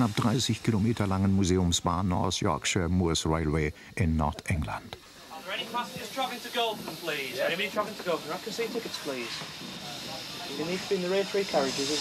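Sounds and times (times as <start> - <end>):
speech: 0.0 - 5.0, 5.6 - 11.9
steam locomotive departing station, hissing steam: 0.0 - 11.9.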